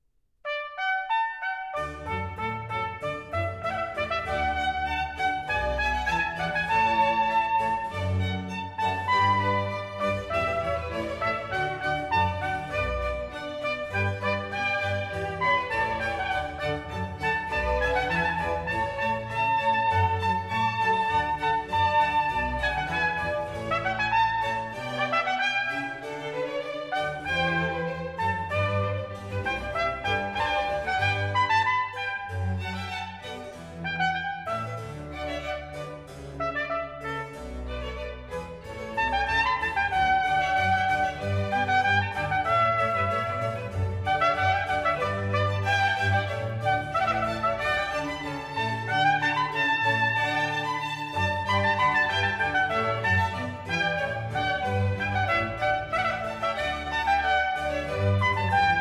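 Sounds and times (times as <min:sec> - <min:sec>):
baroque sinfonia for trumpet, strings and basso continuo: 0:00.4 - 0:58.7.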